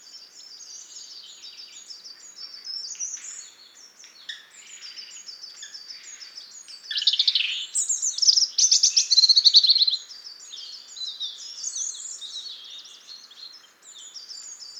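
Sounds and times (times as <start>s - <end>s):
European robin Erithacus rubecula singing: 4.3s - 14.7s.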